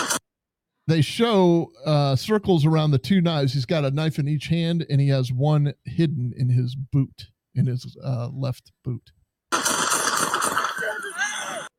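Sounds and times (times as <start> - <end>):
rapid volley of gunfire from police shooting: 0.0 - 0.2, 9.5 - 11.1
speech: 0.9 - 9.2
raised voices: 10.7 - 11.7.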